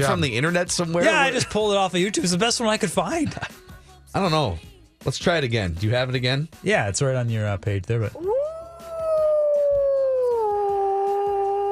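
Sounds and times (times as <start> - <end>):
speech: 0.0 - 8.3
wolf howling: 8.2 - 11.6.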